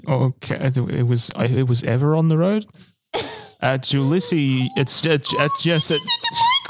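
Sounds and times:
speech: 0.1s - 6.5s
unhappy cat wailing meows: 4.0s - 6.2s.

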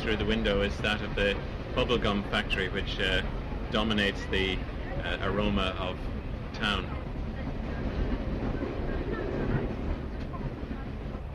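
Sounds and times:
speech: 0.0s - 7.0s
passenger train rumbling and slowing down: 0.0s - 11.3s.

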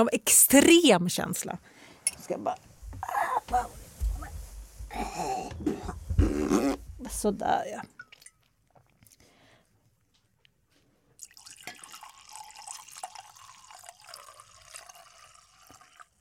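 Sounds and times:
speech: 0.0s - 3.8s, 4.9s - 8.0s
scattered drips: 7.8s - 8.6s, 11.2s - 16.1s
stream of liquid poured into a vessel: 11.2s - 16.1s.

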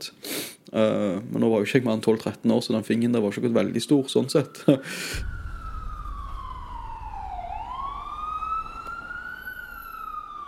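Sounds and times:
speech: 0.8s - 5.4s
ambulance siren wailing: 3.8s - 10.4s.

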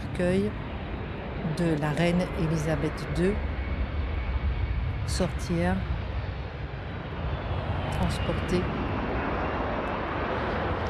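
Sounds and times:
Royal Air Force military airplane engines roaring while landing: 0.0s - 10.8s
speech: 0.2s - 0.6s, 1.4s - 3.5s, 5.1s - 5.9s, 8.0s - 8.8s.

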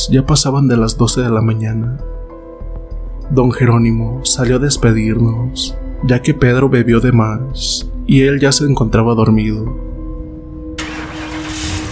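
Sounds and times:
speech: 0.0s - 2.2s, 3.3s - 9.9s
car engine starting: 10.8s - 11.9s.

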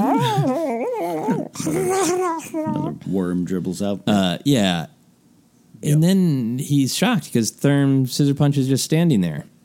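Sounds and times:
voice imitating a creature's howl-like roar: 0.0s - 3.0s
speech: 2.5s - 5.0s, 5.8s - 9.6s.

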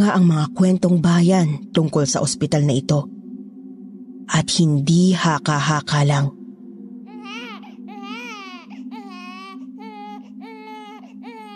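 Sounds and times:
speech: 0.0s - 3.2s, 4.3s - 6.4s
low steady hum: 0.0s - 11.5s
infant crying: 7.1s - 11.5s.

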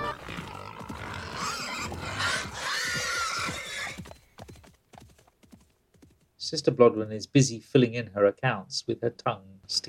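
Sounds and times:
horse whinnying: 0.0s - 4.2s
hooves clattering: 0.0s - 6.3s
speech: 6.5s - 9.8s.

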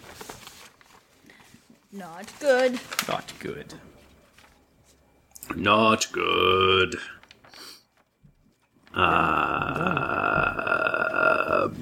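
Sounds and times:
speech: 1.9s - 4.0s, 5.5s - 7.2s, 9.0s - 9.9s
long loud burp: 8.9s - 11.7s.

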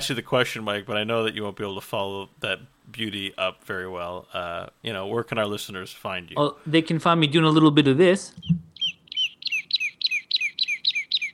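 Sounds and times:
speech: 0.0s - 8.6s
infant toy playing bird tweets: 8.4s - 11.3s.

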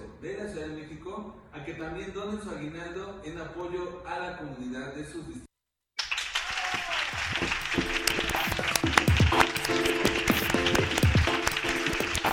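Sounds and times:
speech: 0.2s - 5.5s
crowd applauding: 6.0s - 12.3s
faint cheering voices: 6.4s - 8.1s.

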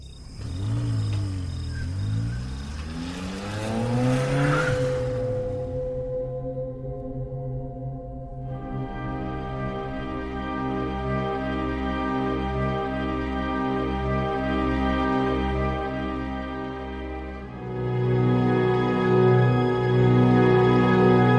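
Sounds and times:
stolen car engine driving off through the desert: 0.0s - 21.3s.

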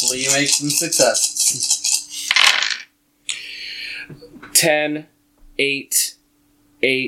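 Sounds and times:
speech: 0.0s - 1.8s, 4.1s - 6.2s, 6.8s - 7.0s
handful of dice clattering across a hard table for a stealth roll: 1.8s - 2.9s.

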